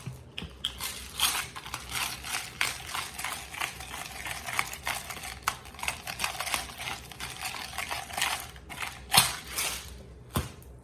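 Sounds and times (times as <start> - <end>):
pepper mill grinding black pepper: 0.4 - 10.0.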